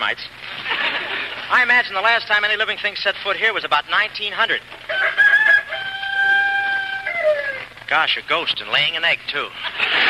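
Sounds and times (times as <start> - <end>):
speech: 0.0 - 0.6, 1.5 - 5.2, 7.9 - 10.0
laughter: 0.5 - 1.5, 9.5 - 10.0
rooster crowing: 4.9 - 7.7.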